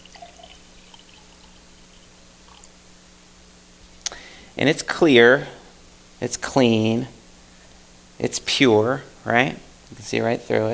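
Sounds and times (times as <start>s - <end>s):
water poured into a glass: 0.0s - 2.7s
low hum: 0.0s - 10.7s
speech: 4.6s - 5.6s, 6.2s - 7.2s, 8.2s - 10.7s.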